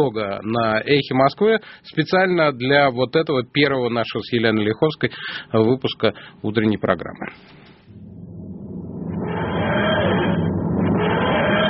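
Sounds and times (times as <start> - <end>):
speech: 0.0 - 7.7
sci-fi time machine materialising with grinding wheezing mechanical drone: 8.1 - 11.6.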